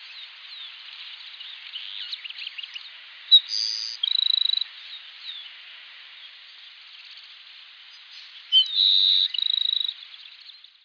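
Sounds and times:
Grassland sparrow Ammodramus humeralis song: 0:00.0 - 0:05.6, 0:07.9 - 0:10.8.

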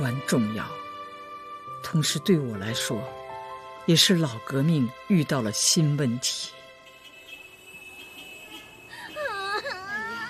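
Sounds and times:
speech: 0:00.0 - 0:00.8, 0:01.8 - 0:03.2, 0:03.9 - 0:06.6
child crying: 0:09.2 - 0:10.2.

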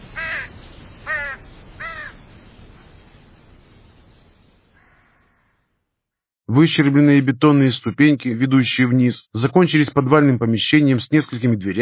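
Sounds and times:
flock of crows cawing overhead: 0:00.1 - 0:02.2, 0:04.7 - 0:05.7
speech: 0:06.6 - 0:11.7.

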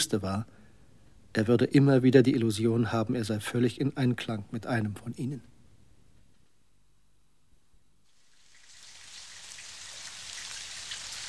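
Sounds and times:
speech: 0:00.0 - 0:00.6, 0:01.3 - 0:05.5
steady rain falling on surfaces: 0:08.2 - 0:11.2.

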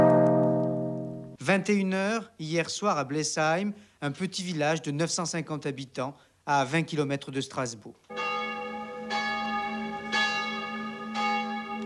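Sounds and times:
church bell ringing in a small village near Strasbourg in the evening: 0:00.0 - 0:01.4, 0:08.1 - 0:11.8
constant low hum: 0:00.0 - 0:01.4
speech: 0:01.5 - 0:08.2.

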